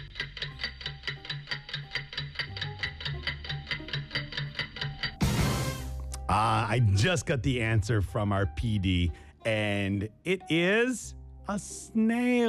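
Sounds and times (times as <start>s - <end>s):
quiz countdown clock ticking: 0.0s - 10.5s
loud harsh buzzer-like blast: 5.2s - 6.0s
speech: 6.3s - 12.4s.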